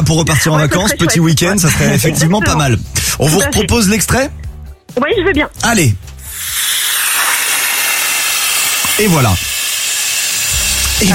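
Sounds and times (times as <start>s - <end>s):
speech: 0.1s - 6.5s, 9.0s - 9.5s, 11.0s - 11.1s
small train braking as it pulls into a station: 6.2s - 11.1s.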